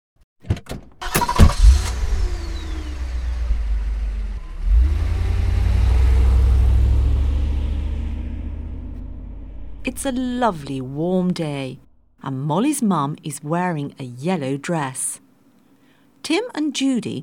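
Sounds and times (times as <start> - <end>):
car door shutting: 0.4 - 3.8
car engine starting: 0.6 - 12.2
speech: 10.0 - 15.2, 16.2 - 17.2.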